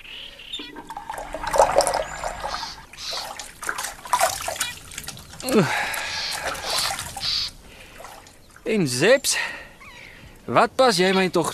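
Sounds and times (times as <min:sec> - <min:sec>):
water running from a tap at a sink as someone washes their face: 0:00.6 - 0:04.7
speech: 0:05.4 - 0:05.9, 0:08.7 - 0:09.6, 0:10.5 - 0:11.5.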